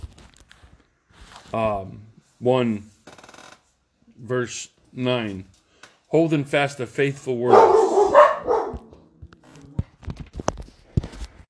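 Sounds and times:
speech: 1.5s - 2.9s, 4.2s - 7.8s
dog barking: 7.5s - 8.9s.

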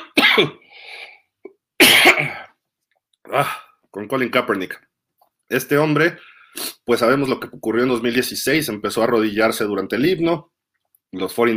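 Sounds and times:
person coughing hard with a raspy rattle: 0.0s - 0.7s, 1.8s - 2.6s
speech: 0.4s - 0.9s, 2.0s - 2.4s, 3.3s - 4.9s, 5.5s - 10.5s, 11.1s - 11.5s.

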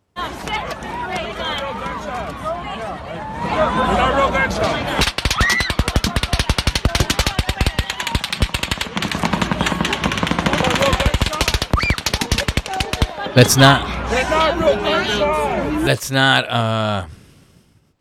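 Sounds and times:
crowd noise and shouting: 0.2s - 17.1s
rapid automatic gunfire from two different guns: 5.0s - 13.4s
speech: 13.4s - 17.1s.

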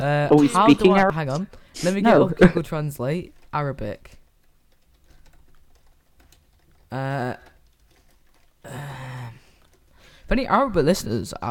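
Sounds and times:
speech: 0.0s - 4.2s, 6.9s - 7.5s, 10.3s - 11.5s
rapid typing on a computer keyboard: 3.3s - 8.8s, 9.4s - 10.2s.

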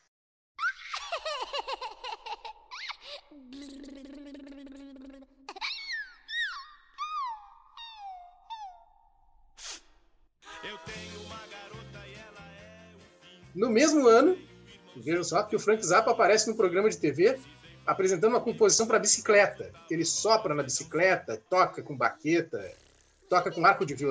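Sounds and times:
baby doll giggling laughter: 0.6s - 8.8s, 21.4s - 24.0s
Brazilian rock song: 10.4s - 13.7s
speech: 13.6s - 14.4s, 15.0s - 24.0s.

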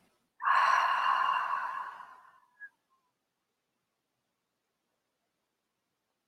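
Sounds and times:
long steady exhale during a guided meditation breathing exercise: 0.4s - 2.4s.

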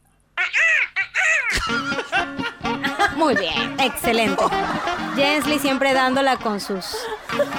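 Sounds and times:
person imitating crow caws: 0.4s - 1.6s
people laughing: 0.6s - 7.5s
speech: 3.2s - 7.5s.

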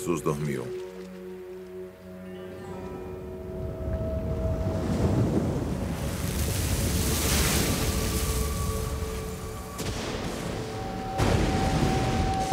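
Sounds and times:
speech: 0.0s - 0.9s
strong wind roaring over a lake: 3.3s - 12.5s
waves crashing on a lake: 4.1s - 12.5s.

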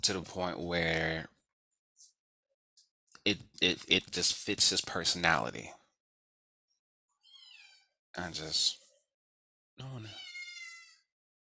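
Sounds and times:
speech: 0.0s - 1.3s, 3.2s - 5.8s, 8.2s - 8.8s, 9.8s - 10.3s
cat meow: 10.1s - 11.1s.

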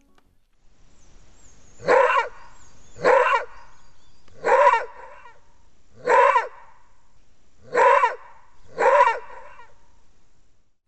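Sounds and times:
maned wolf giving hoarse barking calls: 1.8s - 6.9s, 7.6s - 9.8s.

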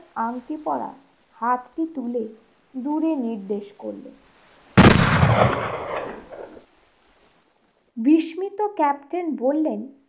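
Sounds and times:
speech: 0.2s - 4.3s, 5.4s - 6.2s, 8.0s - 10.0s
cannon fired from an island: 4.8s - 6.6s.

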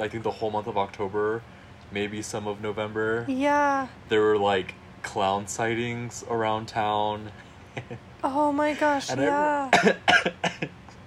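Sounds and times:
speech: 0.0s - 10.8s
person coughing: 9.1s - 10.7s.

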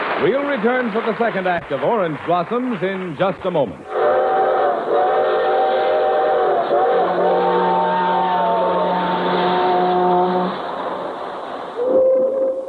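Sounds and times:
rumble of rolling freight cars: 0.1s - 12.6s
speech: 0.2s - 4.2s
freight train whistles blowing in overlapping chords: 3.9s - 11.1s, 11.8s - 12.6s.

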